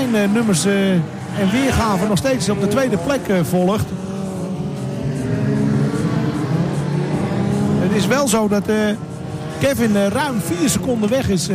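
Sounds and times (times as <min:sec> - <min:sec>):
race car engine roaring on a circuit: 0:00.0 - 0:11.5
speech: 0:00.1 - 0:04.1, 0:08.0 - 0:11.5.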